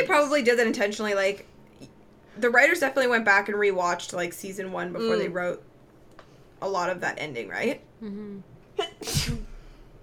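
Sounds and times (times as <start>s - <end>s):
speech: 0.0s - 5.7s, 6.6s - 9.4s
sneeze: 8.8s - 9.6s.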